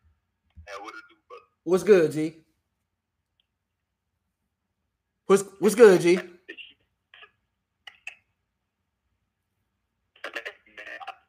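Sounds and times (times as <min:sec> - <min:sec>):
garbled distorted voice over a choppy phone connection: 0:00.7 - 0:01.6, 0:06.1 - 0:08.3, 0:10.2 - 0:11.2
speech: 0:00.7 - 0:02.4, 0:05.3 - 0:06.3.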